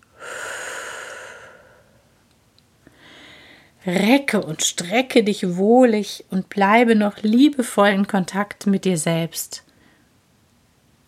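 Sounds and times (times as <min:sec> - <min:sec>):
deep breathing in through the nose and out through the mouth during a guided relaxation exercise: 0:00.0 - 0:02.2, 0:02.8 - 0:03.8
speech: 0:03.8 - 0:09.7.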